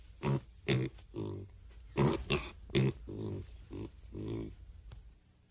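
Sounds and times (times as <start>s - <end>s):
pigs grunting and oinking: 0.2s - 4.6s.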